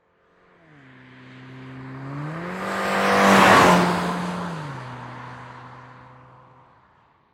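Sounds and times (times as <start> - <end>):
Honda Civic driving by very fast: 0.4 - 6.9.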